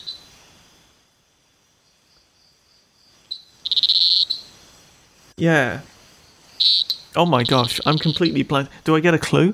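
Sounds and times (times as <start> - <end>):
small frog giving a high thin electronic-sounding trill: 0.0 - 0.5, 3.0 - 5.1, 5.9 - 8.6
speech: 5.4 - 5.9, 6.6 - 9.5.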